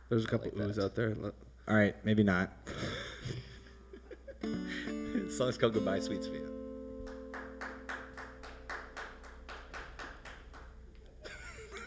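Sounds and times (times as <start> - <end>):
faint noise: 0.0 - 11.8
speech: 0.1 - 3.5, 4.4 - 6.6
laughter: 2.8 - 5.4, 11.2 - 11.8
hand clapping: 7.0 - 11.1.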